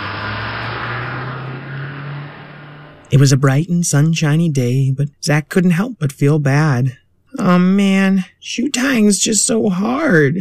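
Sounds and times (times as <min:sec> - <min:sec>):
bus engine driving away: 0:00.0 - 0:03.4
speech: 0:03.1 - 0:10.3.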